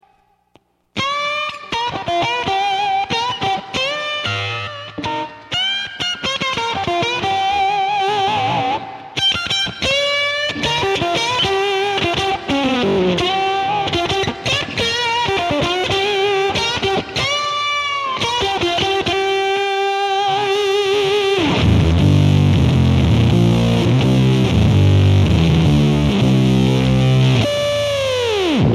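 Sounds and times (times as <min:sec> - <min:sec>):
octavia pedals: 0:01.0 - 0:28.7.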